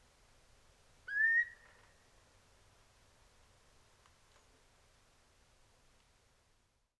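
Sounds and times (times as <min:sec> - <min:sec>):
Eurasian curlew giving a whistled call at night: 0:01.1 - 0:01.8.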